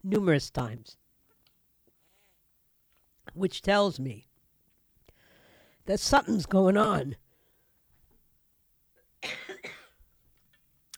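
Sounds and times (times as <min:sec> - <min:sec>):
speech: 0:00.1 - 0:01.0, 0:03.3 - 0:04.3, 0:05.9 - 0:07.2
faint breath or click: 0:05.0 - 0:05.8
person clearing throat: 0:09.2 - 0:10.0
person coughing: 0:09.2 - 0:10.0.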